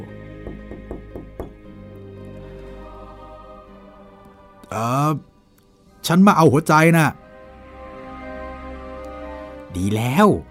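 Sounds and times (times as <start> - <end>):
sustained music: 0.0 - 10.4
firm knocking on a throne room door: 0.3 - 1.7
speech: 4.7 - 5.3, 6.0 - 7.2, 9.8 - 10.4.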